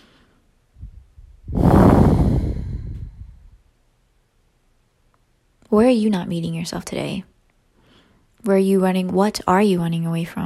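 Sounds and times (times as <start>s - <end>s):
deep breath: 0.0s - 3.6s, 7.7s - 8.4s
speech: 5.7s - 7.3s, 8.4s - 10.4s.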